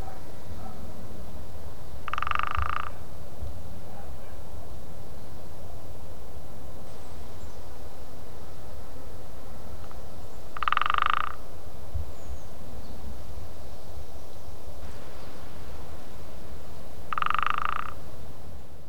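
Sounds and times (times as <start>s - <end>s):
Syrian woodpecker drumming: 2.1s - 2.9s, 10.6s - 11.4s, 17.1s - 18.1s.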